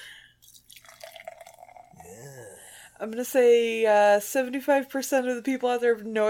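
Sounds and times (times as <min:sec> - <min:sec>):
Bock lager beer pouring into a glass: 0:00.4 - 0:02.5
speech: 0:03.0 - 0:06.2.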